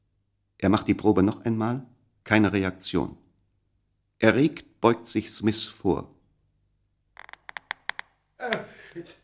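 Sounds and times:
speech: 0.6 - 3.2, 4.2 - 6.2, 8.5 - 9.2
sharp irregular creaking clicks: 7.2 - 8.1.

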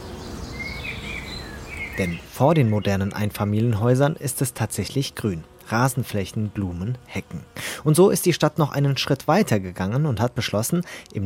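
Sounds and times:
birds chirping: 0.0 - 8.6
bees buzzing: 0.0 - 11.2
speech: 2.0 - 11.2.

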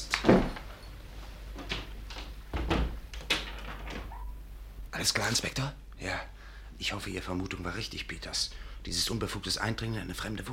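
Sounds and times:
heavy door thump: 0.2 - 0.6, 2.5 - 4.1
speech: 5.0 - 10.5.

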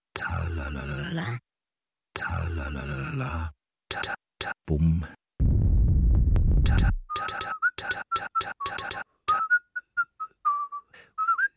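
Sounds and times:
speech: 0.7 - 1.4, 2.2 - 5.2, 6.7 - 9.4
low rumbling noise: 5.4 - 6.7
person whistling a melodic tune: 7.1 - 11.5.

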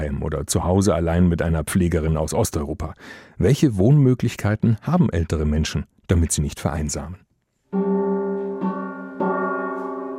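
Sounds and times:
speech: 0.0 - 7.9
gong struck in a courtyard: 7.8 - 10.1.

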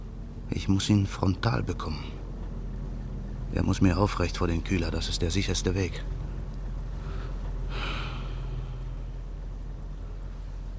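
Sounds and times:
steady low rumble: 0.0 - 10.7
speech: 0.6 - 2.2, 3.6 - 6.2
deep breath of cold night air: 6.9 - 9.1.

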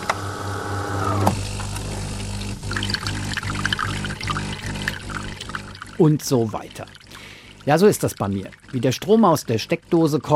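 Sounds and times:
tap water pouring into coffee machine: 1.4 - 10.3
speech: 6.0 - 7.0, 7.6 - 10.3.

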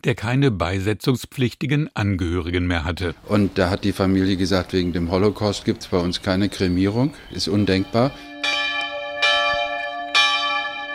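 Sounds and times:
speech: 0.0 - 8.3
cemetery chapel bells ringing: 4.3 - 10.9.

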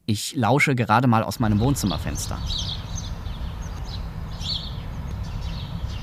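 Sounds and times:
speech: 0.1 - 2.8
low rumble of street traffic: 1.1 - 6.0
birds singing in a garden: 1.2 - 6.0.

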